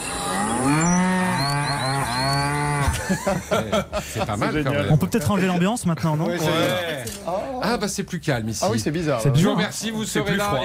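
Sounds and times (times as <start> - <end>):
cows mooing: 0.1 - 3.0
laughter: 2.6 - 5.7
speech: 3.1 - 10.6.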